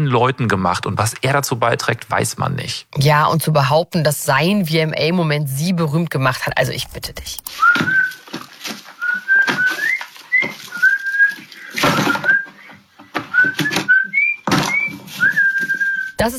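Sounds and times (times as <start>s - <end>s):
speech: 0.0s - 8.2s
rustling: 7.5s - 16.3s
man whistling a light wandering tune: 7.6s - 8.2s, 9.0s - 16.2s
clattering thumps: 7.6s - 16.3s.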